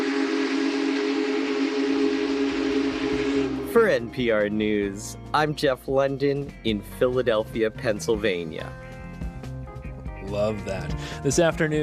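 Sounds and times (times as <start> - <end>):
faint rumbling: 0.0 - 5.0
Big Boy steam locomotive whistle: 0.0 - 5.1
speech: 3.7 - 8.8, 10.3 - 11.8.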